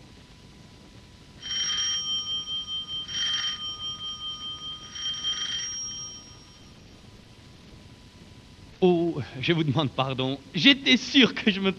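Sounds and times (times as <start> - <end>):
doorbell ringing in short bright bursts: 1.4 - 6.8
speech: 8.8 - 11.7.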